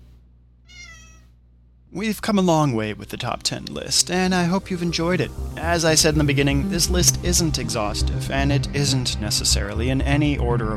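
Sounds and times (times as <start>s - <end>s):
low steady hum: 0.0s - 10.7s
cat meowing: 0.7s - 1.4s
speech: 1.9s - 10.7s.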